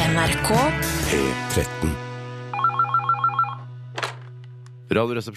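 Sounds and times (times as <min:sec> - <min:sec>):
speech: 0:00.2 - 0:02.0, 0:04.9 - 0:05.3
telephone ringing with warbling electronic pulses: 0:02.5 - 0:03.7.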